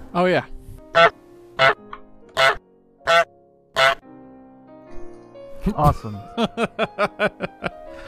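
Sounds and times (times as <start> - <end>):
speech: 0.1 - 1.8, 5.7 - 7.4
goose honk sound effect from a video game: 0.9 - 1.8, 2.4 - 4.0
laughter: 5.8 - 7.8.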